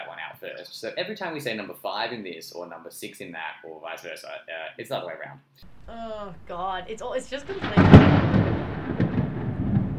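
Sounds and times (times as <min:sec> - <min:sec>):
speech: 0:00.4 - 0:08.5
thunder rumbling in a storm: 0:05.6 - 0:09.9.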